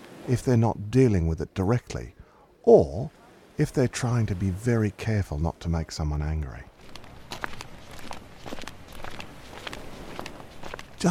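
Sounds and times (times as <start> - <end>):
speech: 0.3 - 6.7
footsteps of a person striding with long steps: 6.8 - 11.0.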